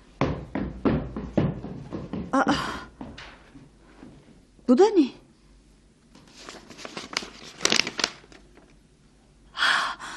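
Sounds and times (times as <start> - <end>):
heavy hollow knocking on a door: 0.2 - 3.2
speech: 2.4 - 2.8, 4.7 - 5.2.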